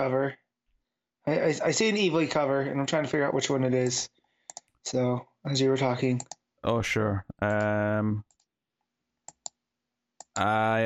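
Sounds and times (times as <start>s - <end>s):
speech: 0.0s - 0.4s, 1.2s - 4.2s, 4.8s - 8.3s, 10.4s - 10.8s
crisp computer mouse clicks: 3.8s - 4.8s, 6.2s - 6.4s, 8.3s - 8.5s, 9.2s - 9.6s.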